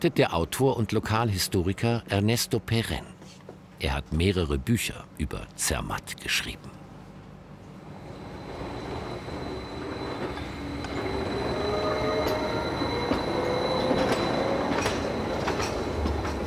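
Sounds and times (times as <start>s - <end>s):
speech: 0.0s - 6.8s
mountain railway train running with a steady rumble: 7.4s - 16.4s
high wheel squeals of a mountain railway train: 8.0s - 16.4s
sharp rail clicks of a mountain railway train: 8.4s - 16.4s.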